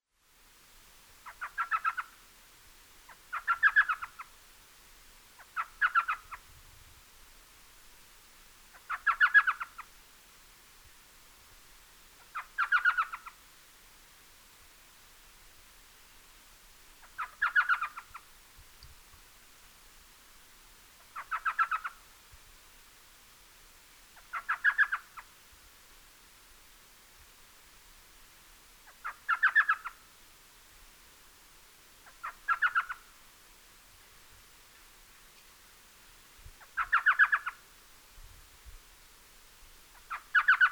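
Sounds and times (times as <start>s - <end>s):
Elf Owl Micrathene whitneyi calling: 1.2s - 2.2s, 3.1s - 4.4s, 5.4s - 6.5s, 8.7s - 10.0s, 12.2s - 13.4s, 17.0s - 18.3s, 21.0s - 22.1s, 24.2s - 25.3s, 28.8s - 30.1s, 32.0s - 33.2s, 36.6s - 37.7s, 39.9s - 40.7s.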